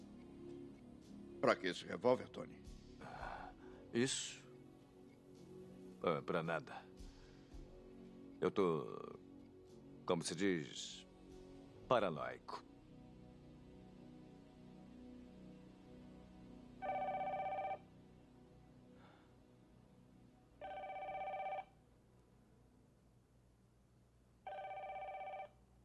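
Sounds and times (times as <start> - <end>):
speech: 1.4 - 3.2, 3.9 - 4.4, 6.0 - 6.9, 8.4 - 9.2, 10.1 - 11.0, 11.9 - 12.7
telephone ringing: 16.8 - 17.8, 20.6 - 21.7, 24.5 - 25.6.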